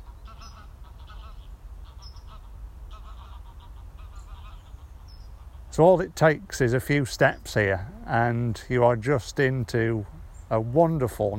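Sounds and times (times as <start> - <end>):
geese flying over honking in mist: 0.0 - 8.4
speech: 5.8 - 11.3.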